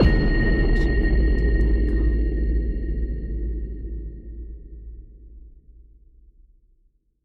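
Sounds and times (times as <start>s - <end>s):
cinematic hit: 0.0s - 5.6s.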